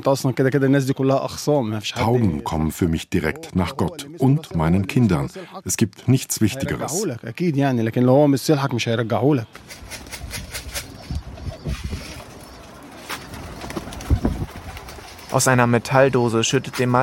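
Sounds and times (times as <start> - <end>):
speech: 0.0 - 10.2, 15.3 - 17.0
pigeons cooing in open wooden coops at a loft: 9.6 - 15.8.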